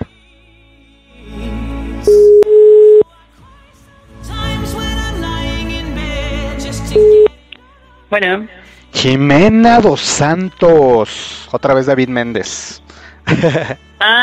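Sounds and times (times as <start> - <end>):
telephone ringback tone through a phone line: 2.1 - 3.0, 7.0 - 7.3
speech: 8.1 - 14.2
laughter: 13.2 - 13.8.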